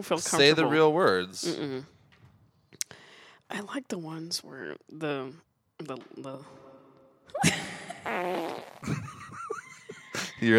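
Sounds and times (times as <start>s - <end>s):
speech: 0.0s - 2.0s, 3.5s - 6.6s, 10.4s - 10.5s
fart noises made with the mouth: 7.9s - 9.2s.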